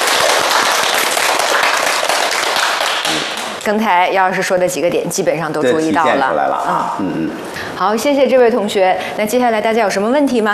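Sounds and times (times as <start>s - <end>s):
classroom audience applause: 0.0s - 3.6s
speech: 3.7s - 10.5s.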